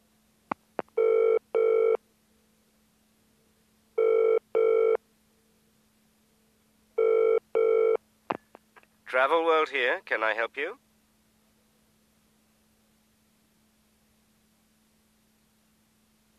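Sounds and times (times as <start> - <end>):
faint telephone line hum: 0.0 - 16.3
telephone line ringing with double-burst tone: 1.0 - 2.0, 4.0 - 5.0, 7.0 - 8.0
speech: 9.2 - 10.8.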